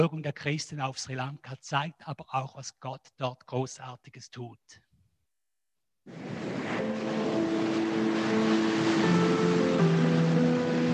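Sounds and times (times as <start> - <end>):
speech: 0.0 - 4.8, 6.1 - 6.7
Indian Ocean surf washing in on Sri Lanka: 6.1 - 10.9.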